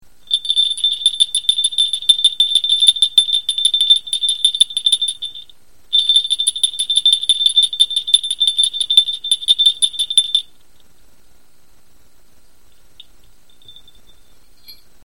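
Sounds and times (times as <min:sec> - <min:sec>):
blue lotus bell ringing: 0:00.3 - 0:10.5.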